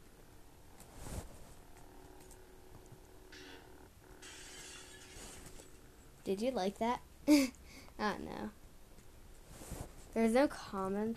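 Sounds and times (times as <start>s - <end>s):
steady low hum: 0.0s - 6.3s
glass breaking: 4.2s - 5.8s
speech: 6.3s - 8.6s, 10.1s - 11.1s.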